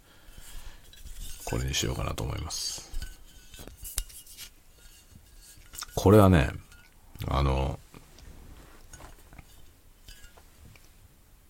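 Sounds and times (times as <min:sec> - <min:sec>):
glass gin bottle being picked up and handled: 0:00.3 - 0:07.0, 0:08.8 - 0:10.6
speech: 0:01.5 - 0:02.9, 0:06.0 - 0:06.6, 0:07.2 - 0:07.8.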